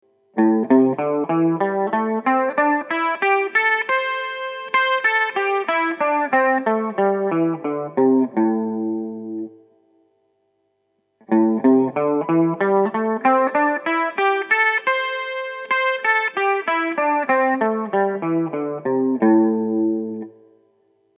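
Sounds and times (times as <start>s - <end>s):
electric guitar playing A minor pentatonic scale in first position at fifth fret: 0.4s - 9.6s, 11.2s - 20.6s.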